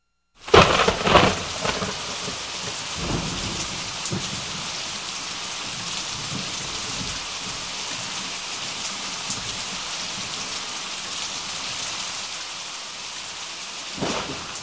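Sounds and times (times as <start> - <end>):
loud thunder crack: 0.4 - 4.8, 14.0 - 14.6
low thunder rumbling: 0.4 - 8.2, 14.0 - 14.6
heavy rain: 0.4 - 14.6.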